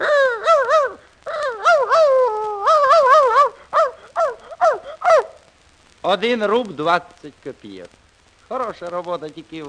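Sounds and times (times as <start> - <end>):
man imitating a dog with yapping barks and whiny yelps: 0.0 - 5.4
speech: 6.1 - 9.6.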